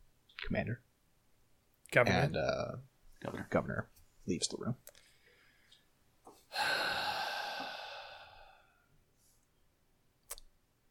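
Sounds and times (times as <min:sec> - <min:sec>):
speech: 0:00.5 - 0:00.9, 0:01.9 - 0:05.0
hissing breath drawn through a breathing apparatus worn tight around the face: 0:06.5 - 0:08.8.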